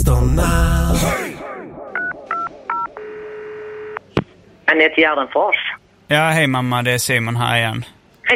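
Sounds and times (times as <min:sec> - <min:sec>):
speech: 0:00.1 - 0:01.3, 0:04.7 - 0:08.3
telephone keypad dialing beeps: 0:02.0 - 0:04.0.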